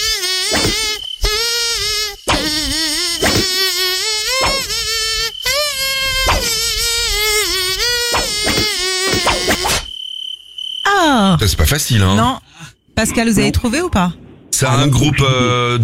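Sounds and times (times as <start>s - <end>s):
nasal whining voice imitating a tiger mosquito humming a melody: 0.0s - 9.9s
speech: 11.8s - 12.4s, 13.0s - 15.8s.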